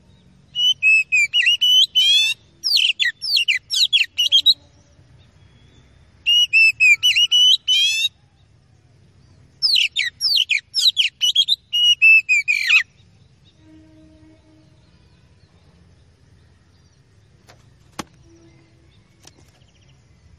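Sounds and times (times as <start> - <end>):
Oriental magpie-robin whistles, chatter and buzzy trills: 0.6 - 4.6, 6.2 - 8.2, 9.6 - 12.9.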